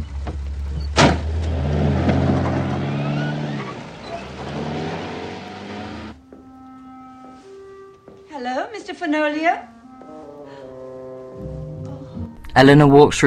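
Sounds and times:
car engine starting and revving as the car pulls away: 0.0s - 6.2s
car door thudding shut: 0.9s - 2.4s
speech: 8.7s - 9.7s, 12.6s - 13.2s.

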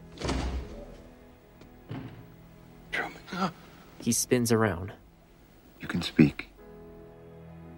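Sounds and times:
heavy door pushed open with a rumbling swing: 0.0s - 1.1s, 1.9s - 2.4s
soft thud of door settling: 0.0s - 2.4s
speech: 3.4s - 5.0s, 5.9s - 6.5s.

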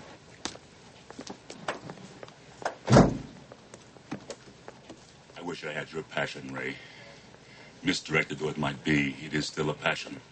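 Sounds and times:
door opening: 2.7s - 3.4s
speech: 5.6s - 7.0s, 7.8s - 10.2s.

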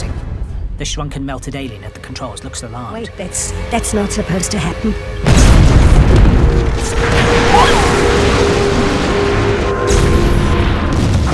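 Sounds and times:
speech: 0.8s - 5.6s
flying saucer exploding in a burst of light and fire: 5.2s - 11.3s.

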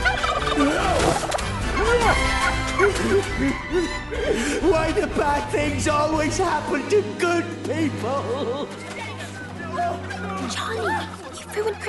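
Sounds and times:
turkeys gobbling as villagers chase them: 0.0s - 2.8s, 9.3s - 11.8s
laughter: 0.0s - 5.2s, 8.1s - 11.8s
speech: 3.0s - 8.9s, 9.8s - 11.8s.

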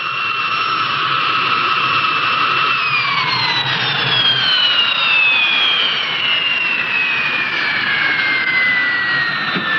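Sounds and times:
airplane jet engine roaring while landing: 0.0s - 9.7s.

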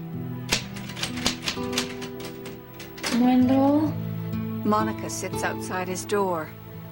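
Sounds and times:
typing in a bedroom: 0.5s - 3.8s
speech: 3.2s - 4.0s, 4.6s - 6.6s.

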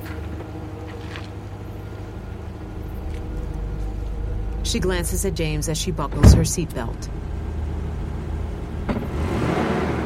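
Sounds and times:
SUV engine rumbling while driving away along a driveway: 0.0s - 10.0s
speech: 4.7s - 7.3s.

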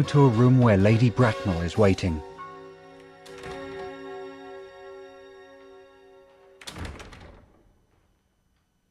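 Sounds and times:
speech: 0.0s - 2.3s
sustained musical drone: 0.0s - 6.6s
loud full thud of doors along a corridor: 6.6s - 7.7s.

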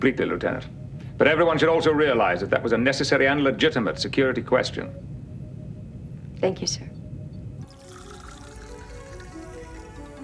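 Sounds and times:
speech: 0.0s - 5.1s, 6.4s - 6.9s
sparkling wine pouring into a glass: 7.6s - 10.2s.

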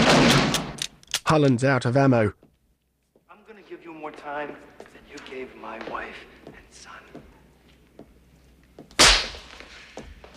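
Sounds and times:
speech: 1.3s - 2.4s, 4.0s - 7.2s
hard slap to the face: 9.0s - 9.6s.

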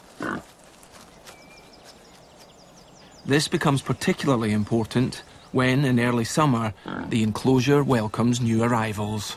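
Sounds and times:
wild boar grunting: 0.0s - 0.6s, 6.6s - 7.3s
speech: 3.3s - 9.3s.

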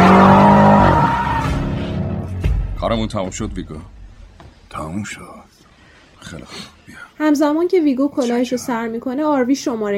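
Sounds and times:
car tire squeal during a full turn: 0.0s - 1.9s
car engine roar: 0.0s - 2.4s
speech: 2.9s - 4.0s, 4.7s - 9.9s.

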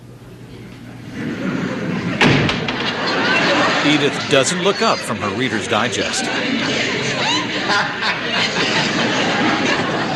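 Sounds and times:
laughter: 1.1s - 10.1s
front door opening and shutting with a solid thud: 2.1s - 3.1s
speech: 3.9s - 9.4s.

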